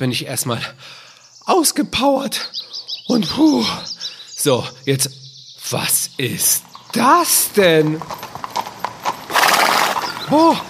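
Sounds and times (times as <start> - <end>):
speech: 0.0 - 8.3, 10.3 - 10.6
horses' hooves clip-clopping: 6.4 - 10.6.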